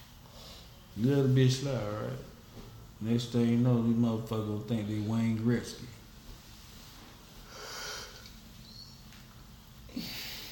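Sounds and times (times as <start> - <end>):
faint hiss: 0.0 - 10.5
speech: 1.0 - 2.3, 3.0 - 6.0
breathy gasp: 9.9 - 10.5
soft yawn with a breathy exhale: 9.9 - 10.5.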